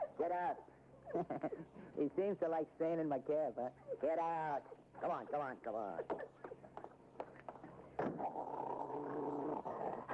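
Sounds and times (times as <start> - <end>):
speech: 0.2 - 6.2
pit bull and big police dog growling and snarling beside a taxi: 8.0 - 10.1.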